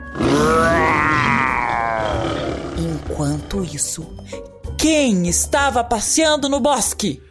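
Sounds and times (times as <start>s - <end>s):
lion roaring: 0.0s - 3.6s
speech: 3.2s - 7.2s.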